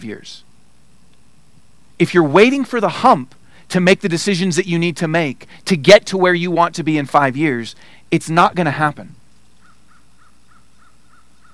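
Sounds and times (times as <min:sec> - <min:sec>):
speech: 0:00.0 - 0:00.5, 0:02.0 - 0:09.2
crow cawing: 0:09.6 - 0:11.5.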